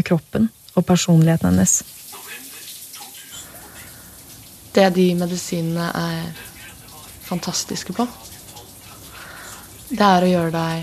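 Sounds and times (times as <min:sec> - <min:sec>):
speech: 0:00.0 - 0:02.0, 0:04.8 - 0:06.5, 0:07.3 - 0:08.3, 0:09.9 - 0:10.8
running tap water splashing while washing dishes in an apartment: 0:00.0 - 0:10.8
soft audiobook voice murmuring: 0:02.1 - 0:04.2, 0:05.6 - 0:10.8.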